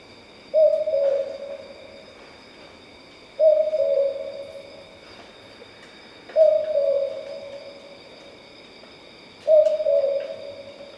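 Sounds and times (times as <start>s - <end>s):
faint insect hum at night: 0.0s - 10.9s
boobook owl low two-note hoot: 0.5s - 1.8s, 3.4s - 4.6s, 6.3s - 7.7s, 9.4s - 10.8s.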